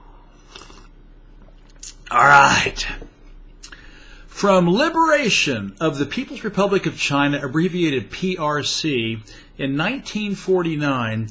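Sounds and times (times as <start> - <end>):
person sipping tea: 0.0 - 2.1
speech: 2.2 - 3.1, 4.4 - 11.2.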